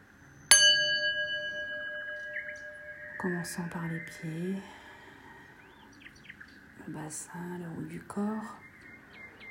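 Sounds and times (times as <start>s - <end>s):
meditation gong strike: 0.5s - 4.2s
speech: 3.2s - 4.8s, 6.9s - 8.6s.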